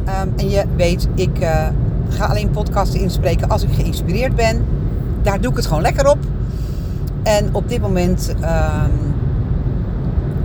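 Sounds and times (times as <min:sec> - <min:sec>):
person making a brief voiced sound: 0:00.0 - 0:04.6, 0:05.3 - 0:06.2, 0:07.1 - 0:09.2
low engine and road rumble in a moving car's cabin: 0:00.0 - 0:10.4
speech: 0:00.3 - 0:06.6, 0:07.2 - 0:09.1.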